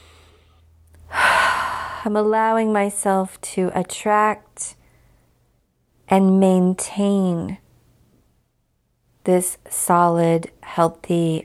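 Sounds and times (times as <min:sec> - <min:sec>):
big deep breath: 0:00.0 - 0:02.1
speech: 0:02.0 - 0:04.8, 0:06.1 - 0:07.6, 0:09.2 - 0:11.4.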